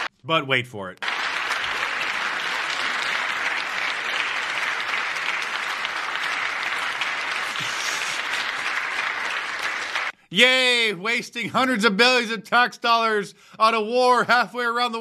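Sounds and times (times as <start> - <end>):
speech: 0.2 - 1.1, 10.3 - 15.0
large audience applauding: 1.0 - 10.2.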